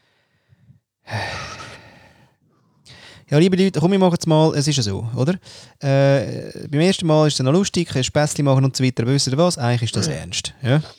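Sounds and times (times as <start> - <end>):
heavy puffing breaths: 0.0 - 3.3
speech: 3.3 - 10.9.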